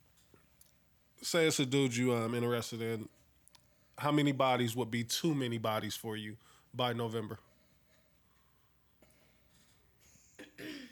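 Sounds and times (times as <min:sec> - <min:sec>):
speech: 0:01.2 - 0:03.2, 0:04.0 - 0:07.5
person clearing throat: 0:10.4 - 0:10.8.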